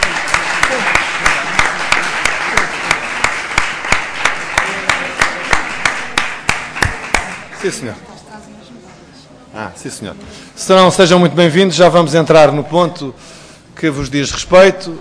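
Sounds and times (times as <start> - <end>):
audience applauding in unison welcoming champions: 0.0 - 8.0
speech: 7.6 - 8.1, 9.6 - 14.9.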